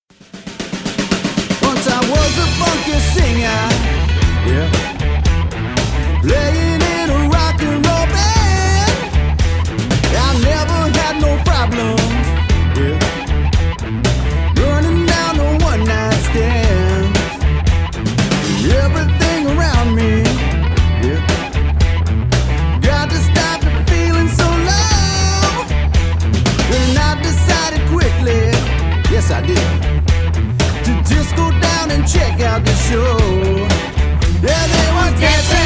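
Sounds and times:
rock band playing: 0:00.1 - 0:35.6.

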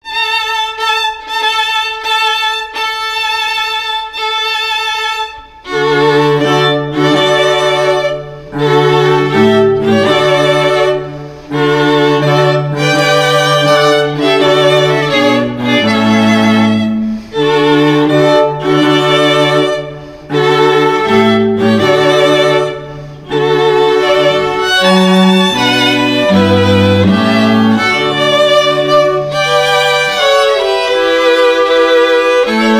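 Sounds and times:
classical string quartet playing: 0:00.0 - 0:32.7.

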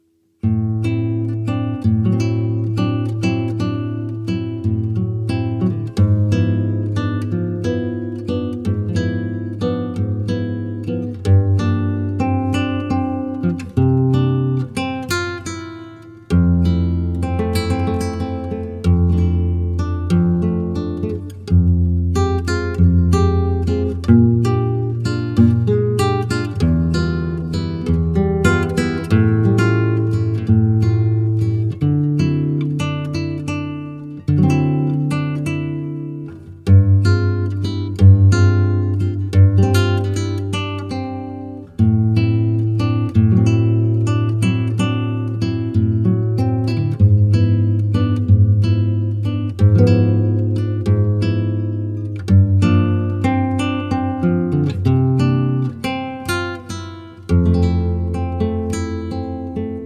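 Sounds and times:
solo flamenco guitar: 0:00.0 - 0:59.8.

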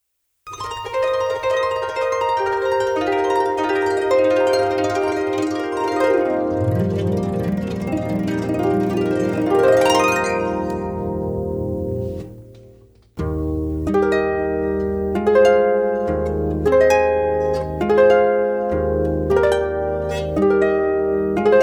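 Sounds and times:
harp playing processional: 0:00.5 - 0:21.6.

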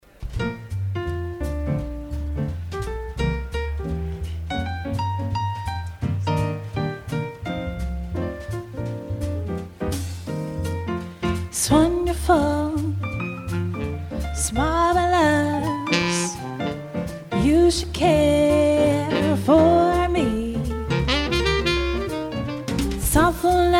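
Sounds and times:
swing band combo playing: 0:00.0 - 0:23.7
female vocalist singing with swing band: 0:11.5 - 0:13.0, 0:14.4 - 0:16.8, 0:17.4 - 0:20.7, 0:23.0 - 0:23.7.

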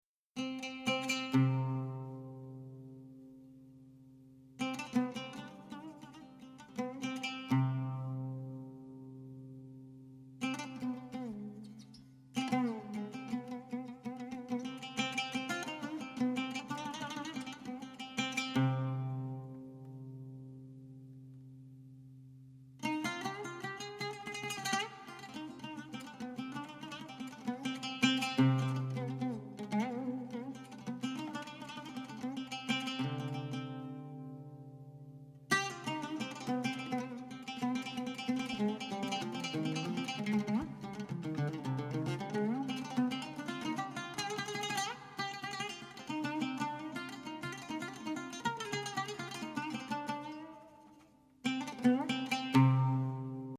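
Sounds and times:
oud: 0:00.4 - 0:53.5.

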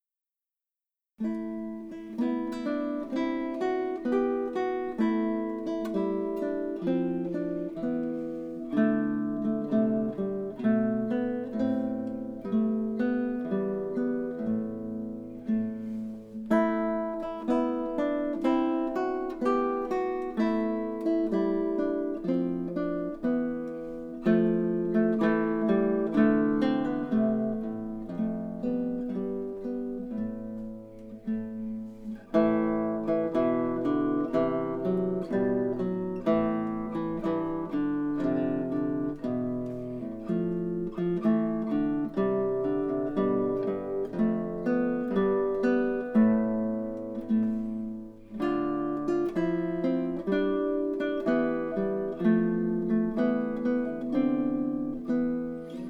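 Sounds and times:
classical guitar chant: 0:01.2 - 0:55.8.

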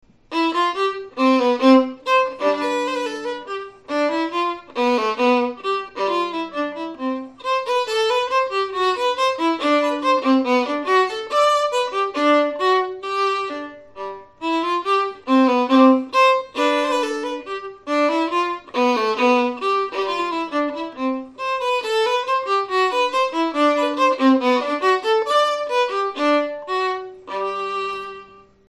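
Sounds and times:
bourree dance piece: 0:00.3 - 0:28.6.

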